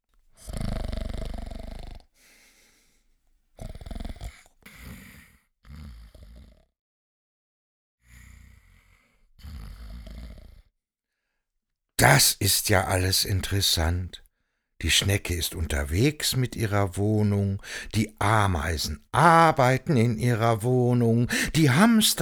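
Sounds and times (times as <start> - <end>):
loud rasping snoring: 0.4 - 2.1, 3.6 - 6.7, 8.1 - 10.7
speech: 12.0 - 14.2, 14.8 - 22.2.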